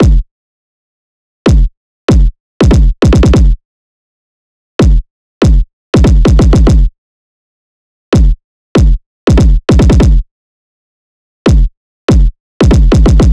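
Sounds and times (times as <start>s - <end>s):
kick drum loop: 0.0s - 0.3s, 1.5s - 3.6s, 4.8s - 6.9s, 8.2s - 10.2s, 11.5s - 13.3s.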